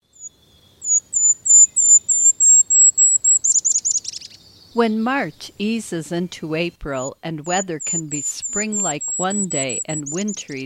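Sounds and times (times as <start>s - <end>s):
speech: 4.8s - 10.6s
golden-crowned kinglet singing: 7.4s - 10.6s.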